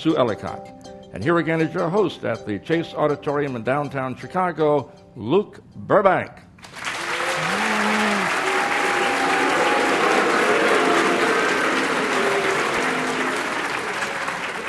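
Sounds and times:
speech: 0:00.0 - 0:06.4
large audience applauding and cheering in an auditorium in downtown Chicago: 0:06.6 - 0:14.6
audience chanting the host's name: 0:07.4 - 0:13.9.

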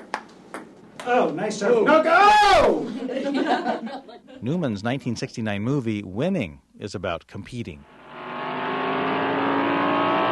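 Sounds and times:
speech: 0:01.0 - 0:08.0
laughter: 0:02.8 - 0:04.4
race car engine revving: 0:07.8 - 0:10.3.

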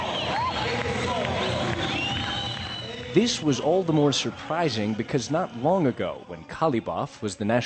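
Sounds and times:
crowd of young people clapping at an election rally: 0:00.0 - 0:06.0
dance music at an election rally in Iran: 0:00.0 - 0:07.6
rising sliding whistles from a rally crowd: 0:01.4 - 0:03.2
speech: 0:03.1 - 0:07.6.

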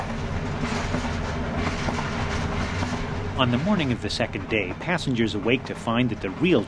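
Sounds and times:
train in Tibet rumbling along the tracks heard from on board: 0:00.0 - 0:06.6
train wheels clattering on rails: 0:00.0 - 0:06.6
speech: 0:03.4 - 0:06.6.

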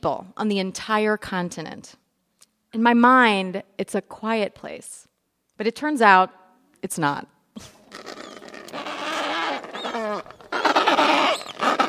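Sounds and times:
speech: 0:00.0 - 0:02.0, 0:02.7 - 0:08.1
Adelie penguin colony squawking in Antarctica: 0:07.8 - 0:11.8.

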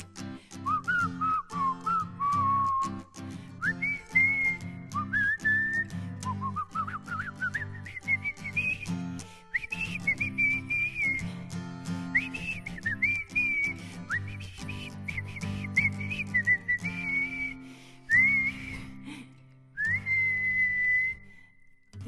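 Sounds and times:
clear bright whistled melody in a song: 0:00.6 - 0:19.1, 0:19.8 - 0:22.0.

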